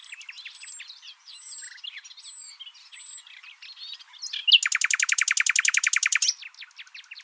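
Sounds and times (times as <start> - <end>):
common nightingale Luscinia megarhynchos singing: 0.0 - 7.2.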